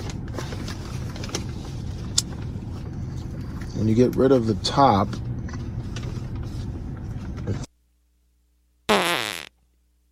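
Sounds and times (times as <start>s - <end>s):
speech: 3.8s - 5.3s
long rough rumbling fart and short squeaky fart: 8.9s - 9.5s.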